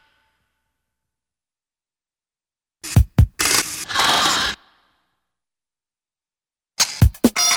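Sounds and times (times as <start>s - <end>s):
short cartoon musical beats with drums: 3.0s - 3.4s, 7.0s - 7.4s.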